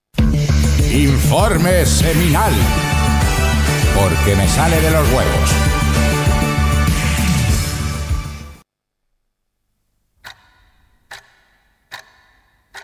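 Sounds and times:
loud burst of music: 0:00.3 - 0:08.6
speech: 0:01.3 - 0:02.9, 0:03.9 - 0:06.1
clock ticking: 0:10.2 - 0:12.8.

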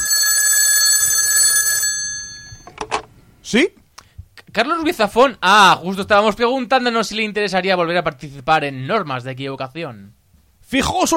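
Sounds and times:
telephone ringing on an outgoing call: 0:00.0 - 0:03.1
quiet low noise: 0:02.0 - 0:11.1
speech: 0:03.5 - 0:03.8, 0:04.5 - 0:11.1.

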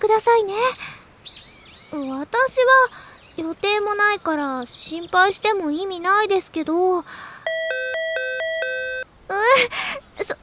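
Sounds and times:
speech: 0:00.0 - 0:01.0, 0:01.9 - 0:07.3, 0:09.3 - 0:10.4
doorbell-style electronic chime pressed at a shrine: 0:07.5 - 0:09.0.

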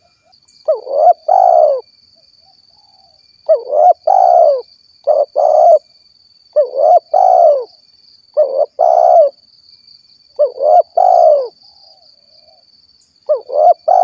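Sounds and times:
faint steady high tone: 0:00.0 - 0:14.0
spotted dove cooing in low hollow phrases: 0:00.7 - 0:01.8, 0:02.8 - 0:05.8, 0:06.6 - 0:07.7, 0:08.4 - 0:09.4, 0:10.4 - 0:12.6, 0:13.3 - 0:14.0.

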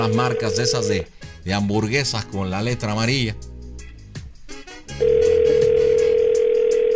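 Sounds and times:
speech: 0:00.0 - 0:03.5
telephone dial tone while a call goes unanswered: 0:05.0 - 0:06.9.

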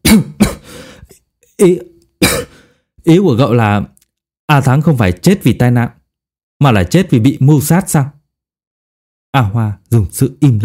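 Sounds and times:
man coughing violently after choking on medicine: 0:00.0 - 0:01.3, 0:02.2 - 0:02.8
speech: 0:00.1 - 0:00.3, 0:01.6 - 0:02.4, 0:03.0 - 0:03.9, 0:04.5 - 0:06.0, 0:06.6 - 0:08.2, 0:09.3 - 0:10.6
wheezy breathing: 0:00.6 - 0:01.2.

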